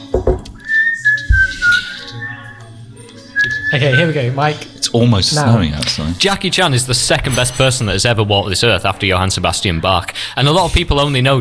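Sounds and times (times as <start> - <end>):
person whistling a short wavering tune: 0.6 - 2.6, 3.3 - 4.2
speech: 3.7 - 11.3.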